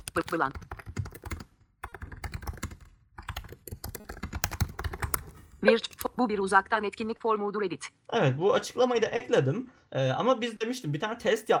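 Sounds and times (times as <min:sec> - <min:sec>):
typing on a computer keyboard: 0:00.0 - 0:06.2
speech: 0:00.2 - 0:00.8, 0:05.6 - 0:11.5.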